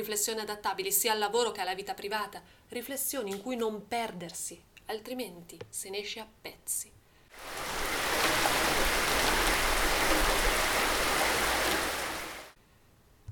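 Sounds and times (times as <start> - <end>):
speech: 0.0 - 7.7
light rain falling with soft continuous patter: 7.3 - 12.6.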